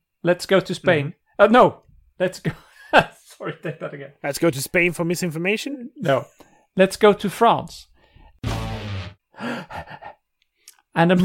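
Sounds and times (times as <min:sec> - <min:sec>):
speech: 0:00.2 - 0:07.9, 0:11.0 - 0:11.2
person panting heavily: 0:09.4 - 0:10.2.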